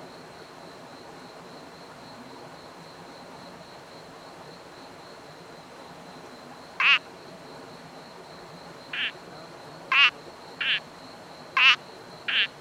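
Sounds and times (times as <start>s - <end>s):
Sri Lanka bubble frog giving rasping croaks and flatter notes: 6.8s - 7.1s, 8.9s - 9.3s, 9.9s - 10.8s, 11.5s - 12.5s.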